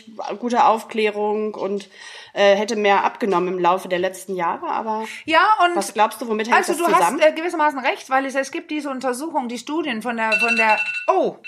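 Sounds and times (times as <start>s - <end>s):
speech: 0.2s - 11.4s
mobile phone alarm ringing with a high electronic tone: 10.3s - 11.4s.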